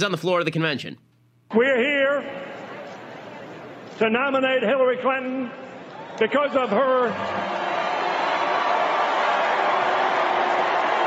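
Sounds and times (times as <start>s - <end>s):
speech: 0.0s - 2.5s, 4.0s - 7.6s
large convention crowd booing: 5.8s - 11.0s.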